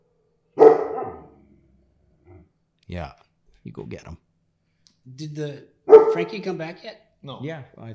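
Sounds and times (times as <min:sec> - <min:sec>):
dog barking: 0:00.6 - 0:01.5, 0:05.9 - 0:06.5
speech: 0:02.9 - 0:04.3, 0:05.0 - 0:07.9.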